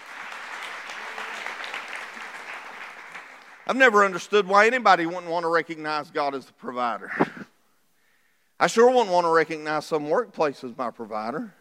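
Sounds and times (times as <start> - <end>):
crowd clapping hands in praise: 0.0 - 4.2
speech: 3.7 - 7.4, 8.6 - 11.6.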